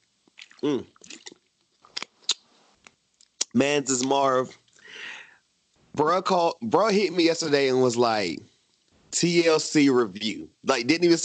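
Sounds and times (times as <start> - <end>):
sharp wet mouth clicks and gulps: 0.2 - 2.4
person sipping water: 0.4 - 1.4
speech: 0.6 - 1.0, 3.6 - 5.1, 6.0 - 8.5, 9.1 - 11.2
soft vocal murmur: 0.6 - 1.3.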